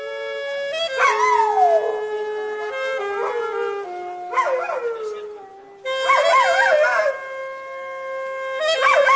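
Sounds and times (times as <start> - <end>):
sustained tenor saxophone notes: 0.0 - 9.1
Labrador howling: 1.0 - 2.1, 3.1 - 5.4, 6.0 - 7.2, 8.7 - 9.1.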